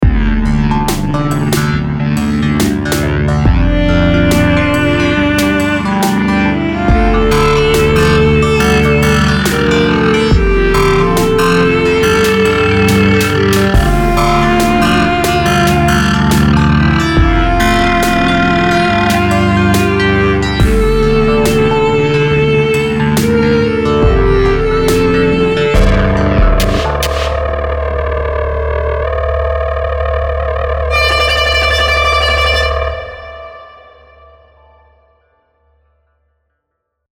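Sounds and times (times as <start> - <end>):
electric viola: 0.1 - 35.0.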